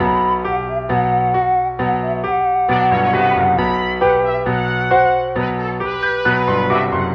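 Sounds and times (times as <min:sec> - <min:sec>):
piano: 0:00.0 - 0:07.1
horns: 0:03.6 - 0:07.1.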